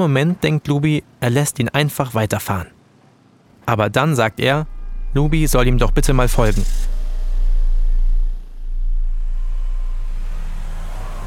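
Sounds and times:
speech: 0.0 - 2.8, 3.7 - 7.0
car engine starting and driving off: 4.6 - 11.2.

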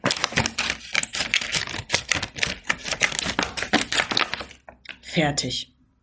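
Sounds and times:
scissors snipping the top off a milk carton: 0.0 - 4.6
speech: 5.2 - 5.7.

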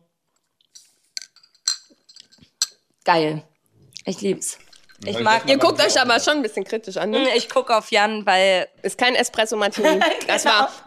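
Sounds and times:
glasses clinking together in a toast: 1.2 - 2.9, 4.5 - 6.1
speech: 3.1 - 10.8.

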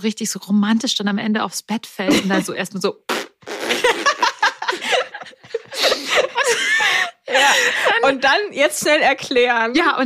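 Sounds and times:
speech: 0.0 - 3.2, 8.0 - 10.0
voice imitating a vaginal fart with sputtering noises: 3.0 - 4.3
people giggling and snickering: 3.7 - 8.0.

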